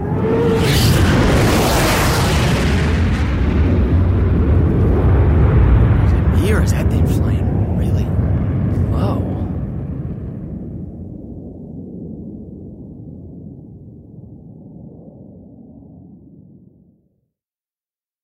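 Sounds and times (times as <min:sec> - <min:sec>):
fighter jet roaring overhead: 0:00.0 - 0:11.8.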